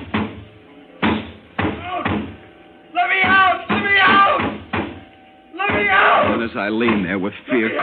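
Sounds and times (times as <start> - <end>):
fist banging on a door: 0.0 - 0.4, 1.0 - 2.4, 3.2 - 5.0, 5.6 - 7.1
speech: 6.5 - 7.8.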